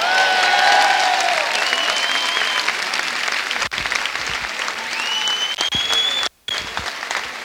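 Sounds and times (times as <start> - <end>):
scattered whistles and cheers from a crowd: 0.0 - 3.2, 4.6 - 7.1
applause from a large crowd: 0.0 - 7.4.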